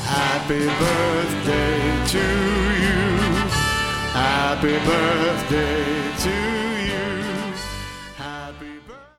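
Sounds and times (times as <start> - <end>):
voices singing a party song: 0.1 - 3.6, 4.1 - 9.1.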